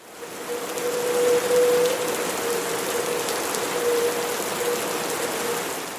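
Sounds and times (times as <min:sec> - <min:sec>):
heavy typhoon rain pouring down in Taiwan: 0:00.0 - 0:05.9.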